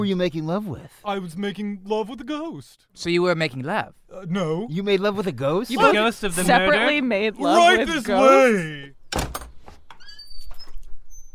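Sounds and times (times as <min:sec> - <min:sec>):
speech: 0:00.0 - 0:09.2
door pushed open with a loud thud: 0:09.1 - 0:10.8
door squeaking and creaking as it swings: 0:09.1 - 0:11.3.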